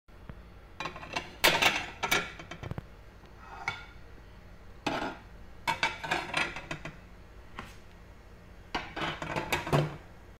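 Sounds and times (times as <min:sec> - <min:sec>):
plate: 0:00.8 - 0:02.7, 0:03.4 - 0:04.0, 0:04.8 - 0:07.0, 0:08.7 - 0:10.0.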